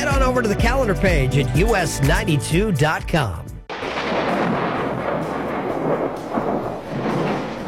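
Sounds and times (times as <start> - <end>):
speech: 0.3 - 3.5
deep rolling thunder from a big storm: 3.7 - 7.6.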